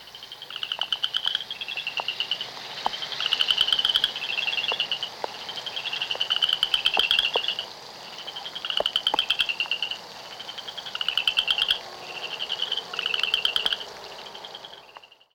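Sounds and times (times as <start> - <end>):
Florida chorus frog calling: 0.0 - 15.3.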